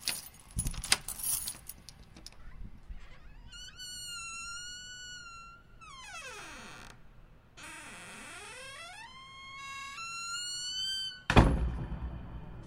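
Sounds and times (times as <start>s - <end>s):
keys jangling and rattling in a lock: 0.0s - 2.6s
door swinging open with a long loud wavering creak: 2.1s - 12.6s
heavy thud: 11.3s - 12.6s.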